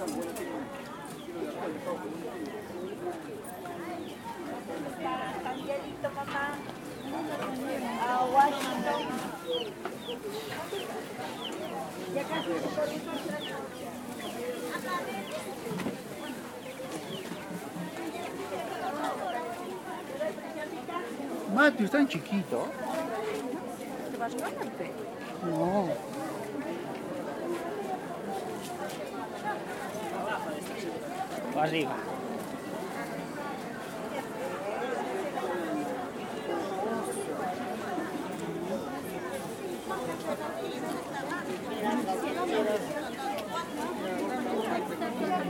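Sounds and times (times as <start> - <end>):
many voices chattering at a Sunday street market in Huancayo Peru: 0.0 - 45.4
chicks peeping at a street market: 9.1 - 11.6
speech: 21.6 - 22.9, 24.3 - 26.1, 31.6 - 32.1.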